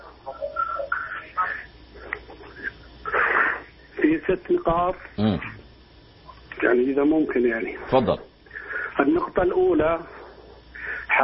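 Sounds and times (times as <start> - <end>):
tinny television voices over a phone line: 0.0 - 11.2
speech: 4.3 - 5.6, 6.6 - 8.3, 9.0 - 10.2.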